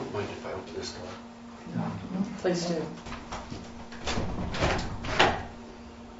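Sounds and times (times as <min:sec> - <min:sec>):
speech: 0:00.2 - 0:03.7
wooden door being opened: 0:03.9 - 0:05.6.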